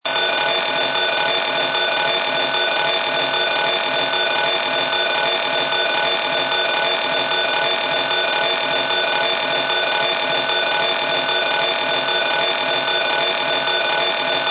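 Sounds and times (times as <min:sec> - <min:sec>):
continuous general alarm bell: 0:00.0 - 0:14.4.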